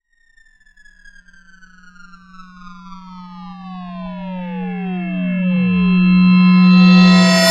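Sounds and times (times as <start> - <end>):
harsh reversed sound: 3.2 - 7.4.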